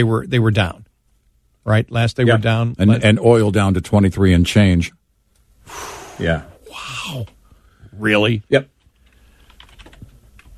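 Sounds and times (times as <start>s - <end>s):
speech: 0.0s - 0.8s, 1.6s - 5.0s, 5.6s - 7.4s, 8.0s - 8.7s
computer keyboard clicking: 8.9s - 10.5s.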